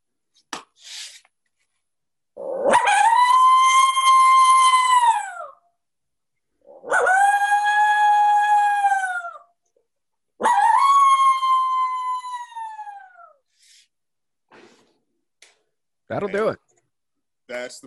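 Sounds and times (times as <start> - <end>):
coyote howls blown on a soft-latex diaphragm call: 2.4 - 5.6, 6.6 - 9.5, 10.4 - 13.4
speech: 16.3 - 16.6.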